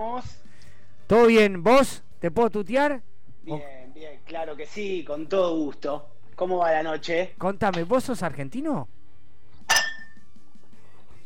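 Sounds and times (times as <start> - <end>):
speech: 0.0 - 0.5, 1.1 - 9.0
ice clinking against a glass for a Fernet drink: 9.7 - 10.2.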